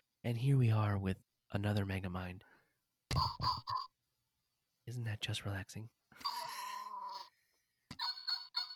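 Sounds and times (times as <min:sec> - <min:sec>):
speech: 0:00.2 - 0:02.5, 0:04.9 - 0:06.4
toy figure making synthetic electronic dog barks: 0:03.2 - 0:03.9, 0:07.9 - 0:08.7.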